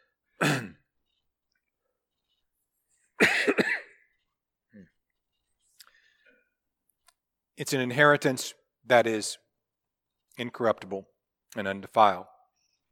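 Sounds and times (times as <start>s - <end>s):
person coughing and clearing throat from a tickle in the throat: 0.4s - 0.9s, 3.2s - 4.1s
speech: 7.6s - 9.4s, 10.4s - 12.3s.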